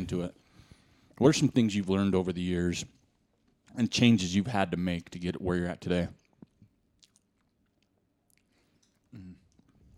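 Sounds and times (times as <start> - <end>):
speech: 0.0 - 0.4, 1.2 - 3.0, 3.7 - 6.2
person chewing a frosted donut: 6.2 - 9.8.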